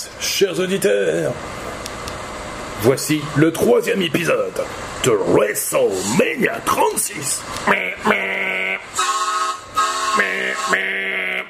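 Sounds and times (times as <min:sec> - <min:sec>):
speech: 0:00.3 - 0:01.7, 0:02.8 - 0:08.6, 0:10.2 - 0:11.4
van horn honking: 0:08.0 - 0:11.4.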